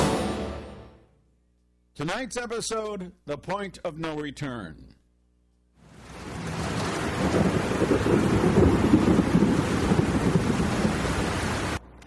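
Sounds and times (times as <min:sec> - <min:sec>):
speech: 0:02.0 - 0:05.0, 0:07.2 - 0:08.7
heavy rain: 0:05.8 - 0:11.8
deep thunder rumbling: 0:06.0 - 0:11.8.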